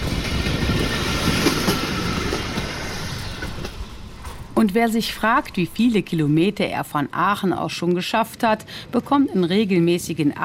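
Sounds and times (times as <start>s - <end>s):
red pedal-powered rail trolleys rolling on railway tracks: 0.0s - 6.8s
speech: 4.6s - 10.4s.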